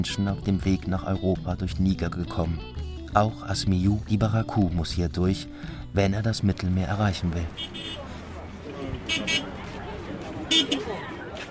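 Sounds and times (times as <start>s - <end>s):
speech: 0.0s - 8.0s, 9.1s - 9.6s, 10.5s - 11.1s
steady low traffic rumble on sand roads in Niamey Niger: 6.3s - 11.4s
chatter: 6.8s - 11.4s
short car horn toots: 7.5s - 8.0s, 9.1s - 9.5s, 10.5s - 10.8s.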